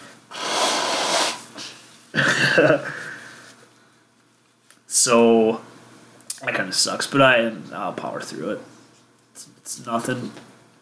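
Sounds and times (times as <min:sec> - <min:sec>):
nose blowing: 0:00.3 - 0:01.8
speech: 0:02.2 - 0:03.0, 0:05.0 - 0:05.7, 0:06.4 - 0:08.7, 0:09.4 - 0:10.5.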